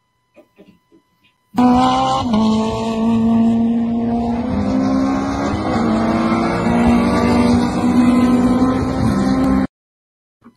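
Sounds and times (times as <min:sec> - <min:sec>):
race car with freshly rebuilt K24 engine roaring: 0:01.6 - 0:09.7.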